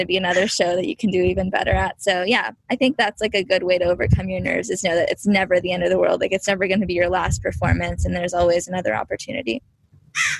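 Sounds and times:
low background rumble: 0.0 - 9.8
speech: 0.0 - 10.3
crow cawing: 10.1 - 10.3.

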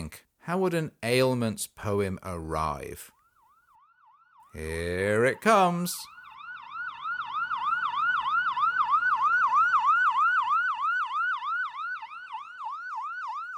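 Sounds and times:
speech: 0.5 - 3.2, 4.5 - 6.2
ambulance siren wailing in a yelp: 3.2 - 13.5.

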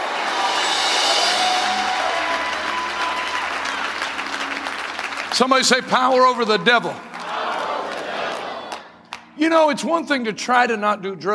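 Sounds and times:
large audience clapping: 0.0 - 9.0
speech: 5.4 - 7.1, 9.4 - 11.3.

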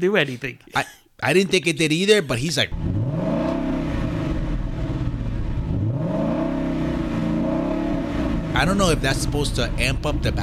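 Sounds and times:
speech: 0.0 - 2.9, 8.6 - 10.4
car engine revving: 2.7 - 10.4.

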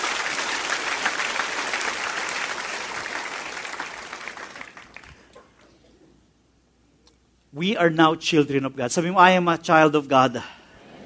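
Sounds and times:
congregation applauding: 0.0 - 5.7
speech: 7.6 - 10.6.

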